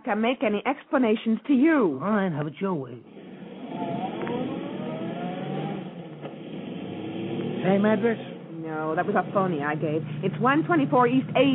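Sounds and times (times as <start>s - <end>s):
speech: 0.0s - 3.2s, 7.6s - 11.5s
taxi car engine revving as it accelerates away: 3.0s - 11.5s.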